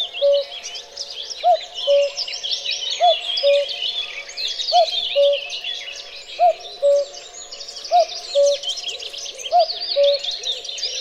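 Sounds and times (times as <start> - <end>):
cuckoo calling: 0.0 - 0.6, 1.4 - 2.2, 3.0 - 3.8, 4.7 - 5.5, 6.4 - 7.2, 7.9 - 8.7, 9.4 - 10.6
songbirds twittering: 0.0 - 10.9.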